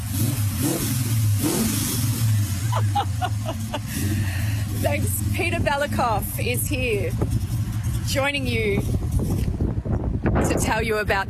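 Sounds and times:
car engine revving outside a radio studio: 0.0s - 9.6s
laughter: 2.3s - 4.6s
speech: 4.0s - 7.4s, 8.1s - 9.4s, 10.4s - 11.2s.

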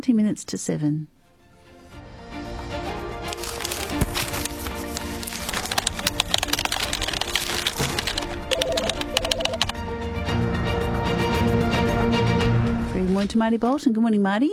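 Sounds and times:
speech: 0.0s - 1.2s, 13.2s - 14.5s
music bed: 1.0s - 14.2s
papers shuffling: 3.2s - 9.7s.

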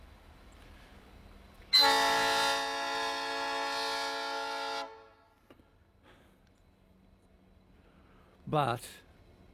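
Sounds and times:
rail motor and locomotive horns blasting on an ore train: 1.7s - 5.4s
speech: 8.5s - 9.1s.

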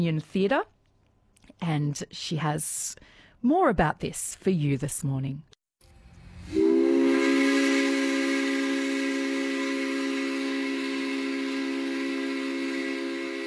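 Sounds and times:
speech: 0.0s - 0.8s, 1.5s - 5.5s
coal mine steam whistle in Wonthaggi Gippsland Australia blowing lunchtime signal: 6.2s - 13.4s.

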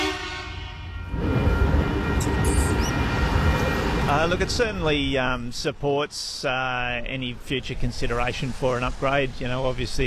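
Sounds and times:
train rumbling past a level crossing: 0.0s - 5.8s
speech: 4.1s - 10.0s.

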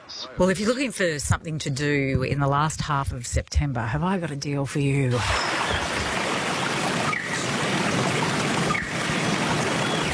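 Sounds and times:
speech: 0.2s - 5.9s
running brook water trickling and burbling: 5.1s - 10.1s.

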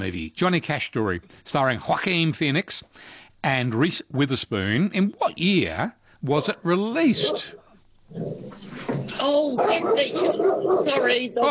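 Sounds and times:
speech: 0.0s - 11.4s
dog growling: 7.2s - 11.3s.

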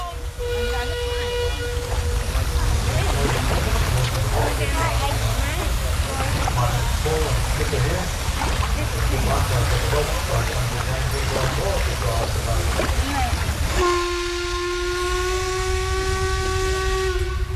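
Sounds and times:
boat motor rumble on the Murray River in the Riverland, Australia: 0.0s - 17.5s
rushing splashing water of the Murray River in the Riverland, Australia: 0.0s - 17.5s.

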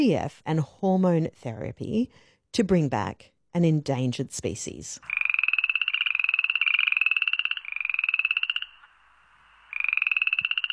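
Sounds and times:
speech: 0.0s - 5.2s
frogs croaking in fast pulsing trills: 5.0s - 10.7s.

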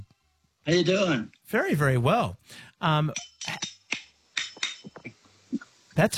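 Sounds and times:
speech: 0.7s - 3.7s, 6.0s - 6.1s
very old silver spoons played as a percussion instrument: 3.1s - 5.1s.

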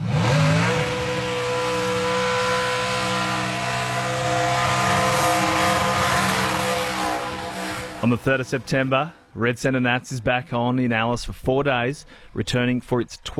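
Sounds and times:
cars revving and doing burnouts at a motor festival: 0.0s - 9.3s
loud continuous engine roar at a motor festival: 0.0s - 9.3s
speech: 8.0s - 13.3s.

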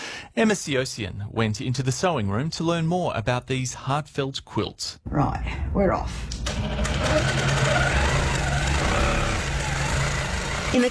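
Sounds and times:
speech: 0.4s - 7.6s
quilting machine whirring in the sewing room of a country cottage: 6.4s - 10.8s.

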